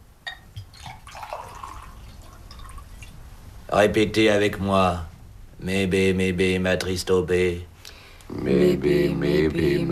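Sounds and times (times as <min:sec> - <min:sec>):
water trickling and dripping: 0:00.3 - 0:03.2
speech: 0:03.7 - 0:07.7, 0:08.3 - 0:09.9.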